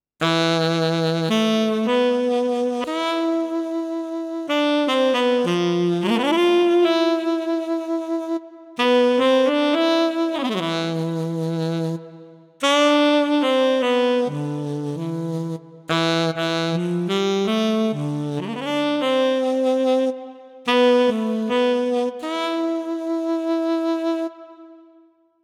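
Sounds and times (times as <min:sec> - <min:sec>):
saxophone on a Yamaha Tyros3 keyboard: 0:00.2 - 0:25.2.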